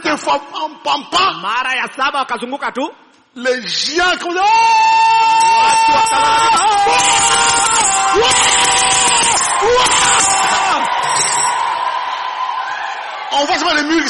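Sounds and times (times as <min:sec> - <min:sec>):
speech: 0:00.1 - 0:11.6, 0:13.3 - 0:14.0
large audience shouting and cheering with whoops and yells: 0:04.4 - 0:14.0.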